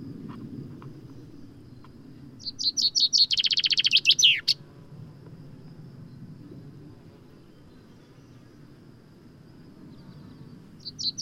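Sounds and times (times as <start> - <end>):
faint low rumble: 0.0 - 3.4, 4.1 - 11.2
common chaffinch Fringilla coelebs singing: 1.7 - 4.6, 9.9 - 11.2.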